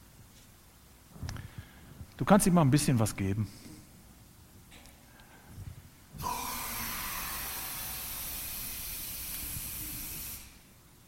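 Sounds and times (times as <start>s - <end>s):
speech: 2.2s - 3.7s
compressed air hissing out of a container in a demonstration experiment: 6.2s - 10.7s.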